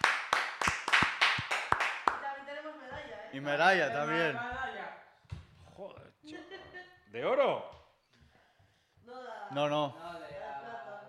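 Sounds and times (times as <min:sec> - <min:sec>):
applause for a group that won a silver medal: 0:00.0 - 0:02.3
speech: 0:03.3 - 0:04.6, 0:07.1 - 0:07.8, 0:09.5 - 0:10.2.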